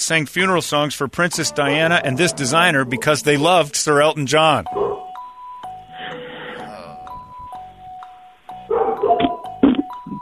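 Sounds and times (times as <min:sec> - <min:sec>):
speech: 0:00.1 - 0:05.0
two-tone doorbell chime: 0:04.6 - 0:10.2
dogs barking: 0:04.7 - 0:05.2, 0:08.7 - 0:09.5.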